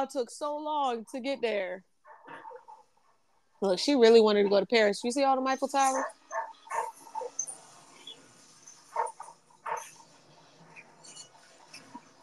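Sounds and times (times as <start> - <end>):
speech: 0.0 - 1.9, 3.6 - 6.2
dog yipping: 5.8 - 7.5, 8.8 - 10.0
faint dog barks: 5.9 - 7.4, 9.0 - 10.0.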